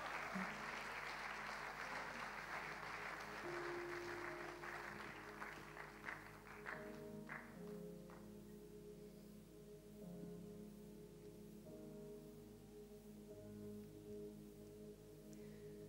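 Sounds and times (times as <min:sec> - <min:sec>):
audience applauding: 0:00.0 - 0:08.3
faint sustained musical tones humming: 0:00.0 - 0:15.8.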